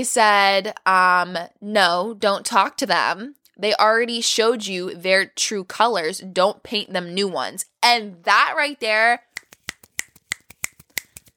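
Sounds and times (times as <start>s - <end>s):
speech: 0.0s - 9.3s
finger snapping: 9.3s - 11.3s.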